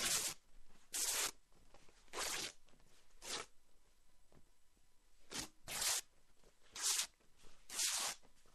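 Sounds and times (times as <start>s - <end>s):
cloth rags being torn into small pieces: 2.1s - 2.6s, 3.2s - 3.5s, 5.3s - 6.1s, 6.7s - 7.1s, 7.7s - 8.2s.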